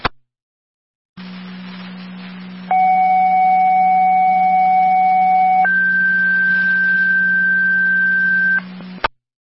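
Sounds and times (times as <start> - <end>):
radio hiss and hum: 1.2 - 9.1
two-tone fire dispatch radio paging alert: 2.7 - 8.6.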